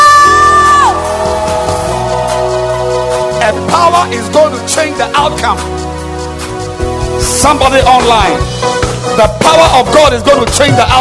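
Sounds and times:
congregation cheering and screaming: 0.0s - 3.8s
speech: 3.9s - 5.8s, 7.2s - 10.9s.

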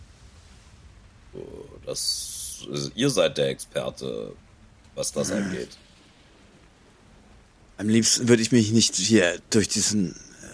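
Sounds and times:
steady rain pouring among trees: 0.0s - 10.5s
speech: 1.4s - 5.8s, 7.8s - 10.3s.

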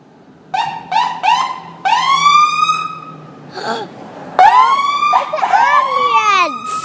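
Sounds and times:
loud ambulance siren passing by with yelping bursts and rising wails: 0.5s - 3.3s, 4.4s - 6.8s.

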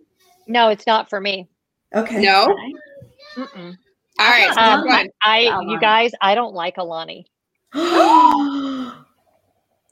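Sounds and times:
speech: 0.5s - 2.7s, 3.4s - 8.6s
group of voices gasping in surprise: 7.7s - 9.1s.

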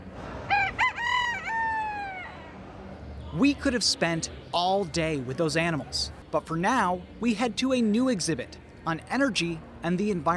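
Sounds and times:
rooster crowing at a state fair poultry exhibit: 0.5s - 2.5s
speech: 3.4s - 10.3s.

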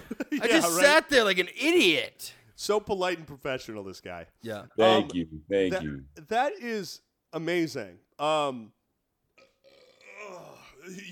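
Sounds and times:
speech: 0.4s - 8.8s, 10.9s - 11.0s
person burping: 9.4s - 11.0s.

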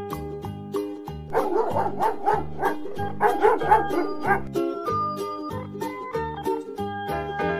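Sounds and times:
bouncy instrumental tune with steady bass line: 0.2s - 7.5s
dog barking in sharp yaps: 1.3s - 4.5s.

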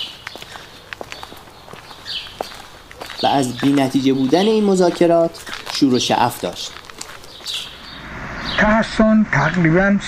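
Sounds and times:
footsteps of a man walking back and forth: 0.0s - 7.8s
speech: 3.2s - 6.8s, 8.6s - 10.0s.

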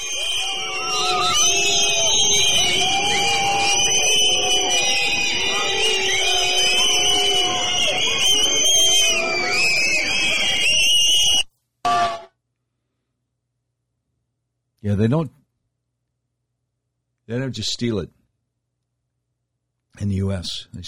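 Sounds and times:
large crowd whistling at a parade in France: 0.0s - 12.3s
people shouting and jeering at a parade in France: 0.0s - 12.3s
speech: 15.0s - 15.4s, 17.3s - 18.2s, 20.0s - 20.8s.

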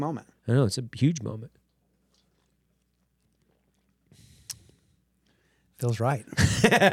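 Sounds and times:
speech: 0.0s - 1.6s, 5.8s - 6.9s
quiet slurping sip of coffee: 2.0s - 5.4s
soft breathy noise: 4.1s - 5.8s
laughter: 6.3s - 6.9s.

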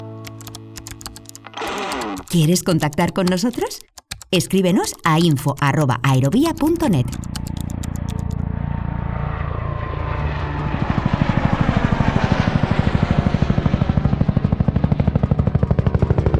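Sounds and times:
helicopter rotor chop: 0.4s - 16.3s
speech: 2.2s - 7.4s
hovering helicopter turbine roaring: 6.3s - 16.3s.

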